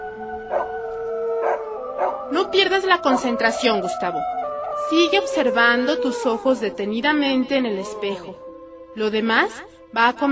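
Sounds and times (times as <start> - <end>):
two dogs howling together: 0.0 - 3.9
speech: 2.3 - 8.4, 9.0 - 10.3.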